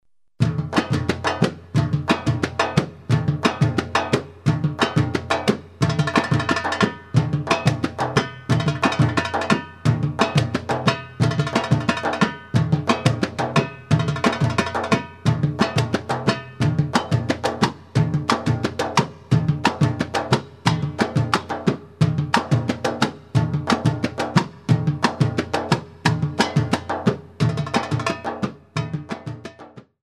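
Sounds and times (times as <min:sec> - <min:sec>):
oriental solo tabla: 0:00.4 - 0:29.9.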